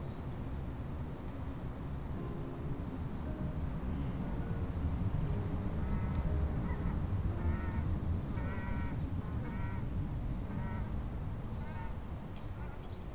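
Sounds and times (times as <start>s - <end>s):
wind buffeting the microphone: 0.0s - 13.1s
duck quacking while flying up a valley: 5.8s - 9.8s, 10.5s - 10.9s, 11.6s - 12.0s.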